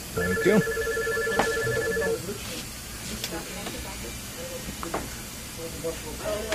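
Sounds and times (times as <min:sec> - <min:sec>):
speech: 0:00.2 - 0:00.9
telephone ringing: 0:00.2 - 0:02.2
faint indistinct voices: 0:01.3 - 0:06.5.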